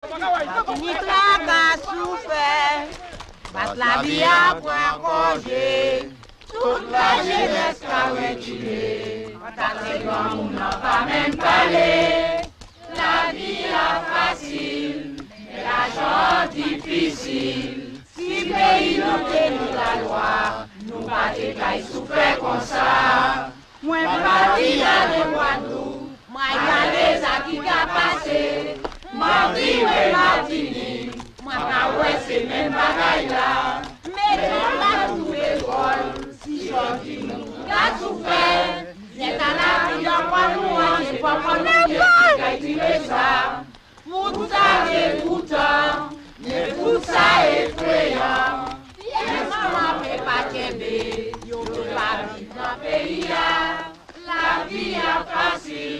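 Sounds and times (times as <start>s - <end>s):
workers' song: 0.0s - 55.9s.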